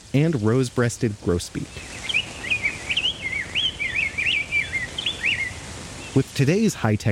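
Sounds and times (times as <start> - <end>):
steady hiss: 0.0 - 7.1
speech: 0.1 - 2.0, 6.2 - 7.1
song sparrow singing: 1.6 - 6.4.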